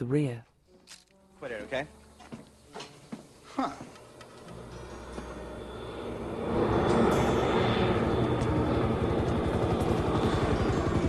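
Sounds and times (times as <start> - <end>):
speech: 0.0 - 2.0, 3.6 - 4.0
light aircraft engine droning: 1.5 - 11.0
helicopter rotor thumping: 4.2 - 11.0.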